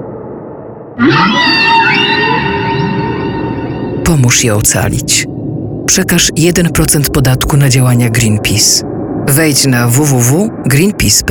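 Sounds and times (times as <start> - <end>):
speech: 1.0 - 1.6, 4.1 - 11.2
whales calling: 1.0 - 7.2.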